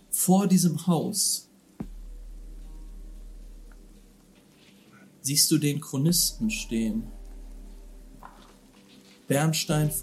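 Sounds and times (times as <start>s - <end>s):
speech: 0.2s - 1.5s, 5.3s - 7.2s, 9.3s - 10.0s
rain falling outside a house: 1.5s - 10.0s
soft low rumble: 1.8s - 4.9s, 6.0s - 8.8s.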